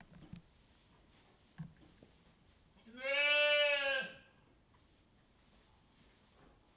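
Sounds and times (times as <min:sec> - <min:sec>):
soft rustling: 0:00.0 - 0:02.9, 0:04.6 - 0:06.7
sheep bleating in a sheepfold with straw: 0:02.9 - 0:04.2.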